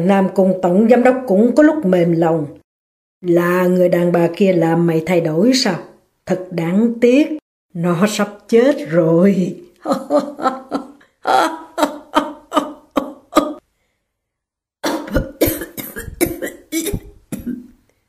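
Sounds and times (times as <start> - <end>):
speech: 0.0 - 2.6, 3.2 - 11.6
man laughing with strained laughter: 9.8 - 13.6
man coughing up blood: 14.8 - 17.7.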